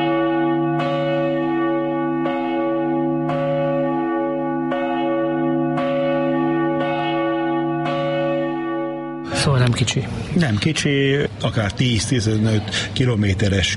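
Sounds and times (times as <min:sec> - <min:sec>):
large church bell tolling: 0:00.0 - 0:10.0
speech: 0:09.6 - 0:13.7.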